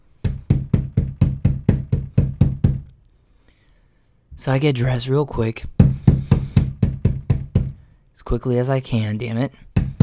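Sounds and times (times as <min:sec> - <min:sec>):
heavy booming knocks on a door: 0:00.3 - 0:02.9, 0:05.8 - 0:07.8
speech: 0:04.4 - 0:05.8, 0:08.2 - 0:09.6.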